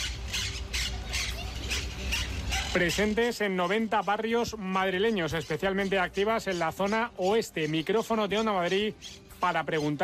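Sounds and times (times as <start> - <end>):
monk parakeets squawking: 0.0 - 10.0
speech: 2.8 - 10.0.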